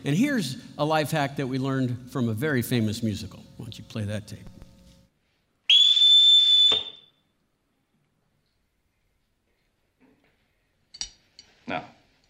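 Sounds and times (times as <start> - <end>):
speech: 0.0 - 4.5, 11.7 - 11.9
shrill whistle blast blown to call children: 5.7 - 7.3.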